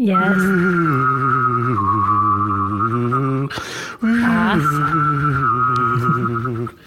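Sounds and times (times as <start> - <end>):
person whistling and humming at once imitating a flying saucer: 0.0 - 6.8
brief breath: 3.5 - 4.0.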